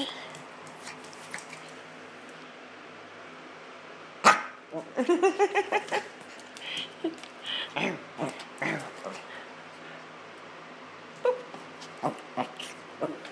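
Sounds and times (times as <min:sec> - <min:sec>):
low hum: 0:00.0 - 0:13.2
playful dog barking excitedly: 0:04.2 - 0:04.6.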